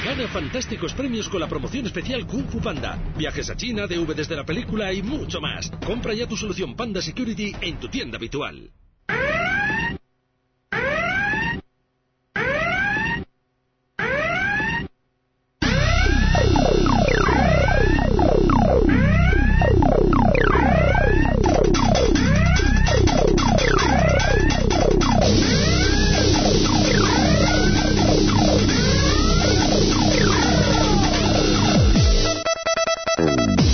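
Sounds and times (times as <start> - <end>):
speech: 0.1 - 9.2
short siren blasts: 9.1 - 10.0, 10.7 - 11.6, 12.4 - 13.3, 14.0 - 14.9, 15.6 - 33.6
overlapping wailing sirens: 14.0 - 14.8, 15.6 - 32.4.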